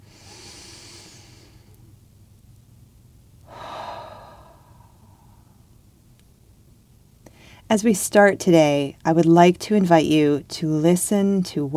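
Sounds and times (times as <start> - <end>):
slow deep breath: 0.0 - 1.8, 3.4 - 5.8, 7.2 - 7.7
speech: 7.7 - 11.7.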